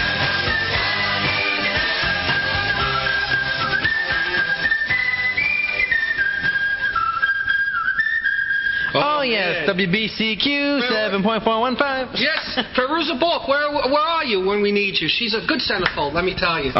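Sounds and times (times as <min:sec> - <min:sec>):
person whistling a wavering tune: 0:00.0 - 0:09.1
speech: 0:09.6 - 0:16.7.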